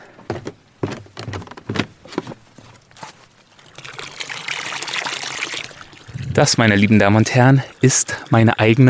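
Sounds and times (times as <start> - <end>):
spring water bubbling into a wooden trough: 3.5 - 8.8
speech: 6.4 - 8.8.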